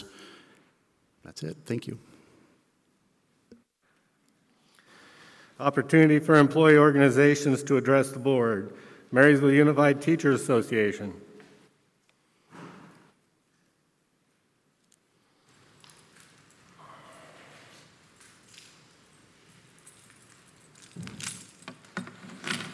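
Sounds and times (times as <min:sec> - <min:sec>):
room noise at a school board meeting: 0:00.0 - 0:22.7
speech: 0:01.2 - 0:02.1, 0:05.6 - 0:11.2
load of keys strapped to a person jingling: 0:15.5 - 0:16.8, 0:17.7 - 0:22.7.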